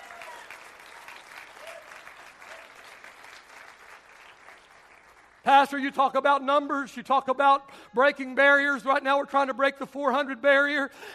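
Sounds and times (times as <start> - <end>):
audience applauding: 0.0 - 5.5
speech: 5.5 - 11.1.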